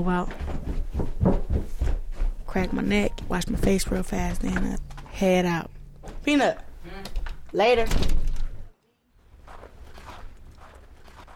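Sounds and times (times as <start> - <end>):
speech: 0.0 - 0.5, 2.5 - 8.2
footsteps crunching: 0.3 - 5.2, 9.2 - 11.3.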